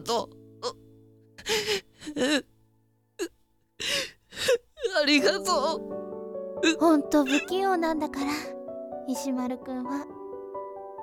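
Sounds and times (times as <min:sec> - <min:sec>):
speech: 0:00.0 - 0:00.4, 0:05.1 - 0:06.0, 0:06.6 - 0:10.2
person sobbing with shaky gasps and whimpering cries: 0:01.4 - 0:02.5, 0:03.2 - 0:05.1.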